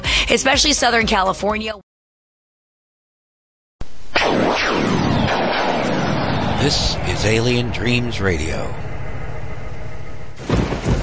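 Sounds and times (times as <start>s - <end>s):
speech: 0.3s - 1.9s, 6.6s - 8.9s
thunder crack and rumble: 4.2s - 11.0s
heavy rain: 10.4s - 11.0s.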